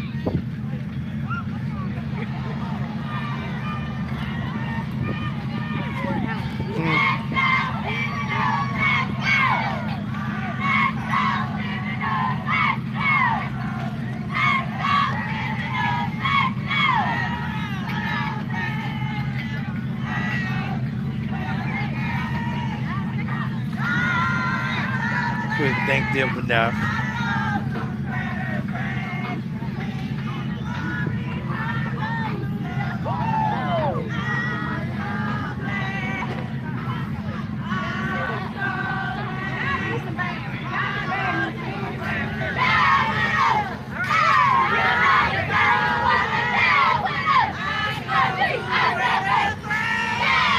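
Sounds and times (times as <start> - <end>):
low engine rumble: 0.0 - 50.5
outdoor parade crowd cheering and shouting: 0.0 - 50.5
children yelling: 1.1 - 50.5
speech: 26.2 - 27.0.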